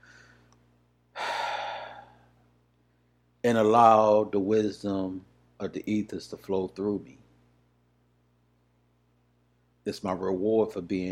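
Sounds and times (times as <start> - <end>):
deep breath drawn in sharply: 0.0 - 3.1
faint steady low hum: 0.0 - 11.0
speech: 3.5 - 7.2, 9.8 - 11.0.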